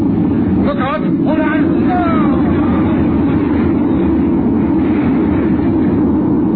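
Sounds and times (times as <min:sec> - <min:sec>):
large wave crashing over a lifeboat: 0:00.1 - 0:06.5.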